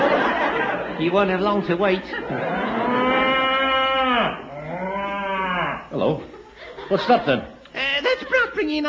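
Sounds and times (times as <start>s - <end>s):
laughter: 0.0s - 3.4s, 6.2s - 8.8s
speech: 1.0s - 2.8s, 5.9s - 6.3s, 6.9s - 7.6s, 8.2s - 8.8s
cow mooing: 2.4s - 5.9s.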